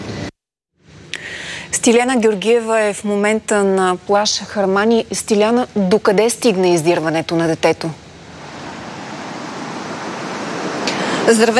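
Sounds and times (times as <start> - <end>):
speech: 1.7 - 8.0, 11.3 - 11.5
stormy sea waves with heavy swell breaking on a beach: 8.1 - 11.5.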